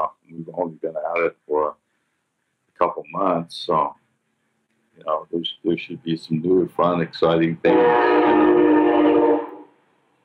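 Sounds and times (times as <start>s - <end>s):
speech: 0.0s - 1.8s, 2.8s - 4.0s, 5.0s - 8.9s
loud sustained train horn blast: 7.7s - 9.7s.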